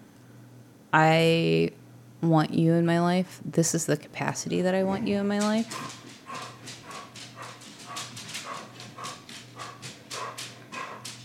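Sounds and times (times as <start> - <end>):
speech: 0.9 - 6.5
dog barking protectively: 5.7 - 11.1.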